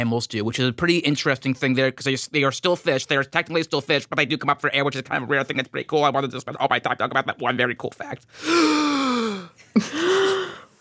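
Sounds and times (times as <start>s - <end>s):
speech: 0.0s - 9.0s, 9.8s - 10.6s
loud dramatic breathy gasping: 8.3s - 10.7s.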